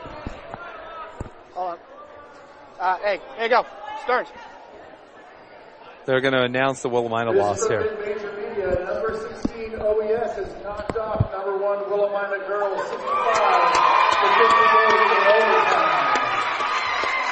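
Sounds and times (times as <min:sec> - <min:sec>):
speech: 0:01.6 - 0:01.9, 0:02.8 - 0:04.5, 0:06.1 - 0:16.0
crowd of fans cheering and applauding in a gym: 0:12.9 - 0:17.3.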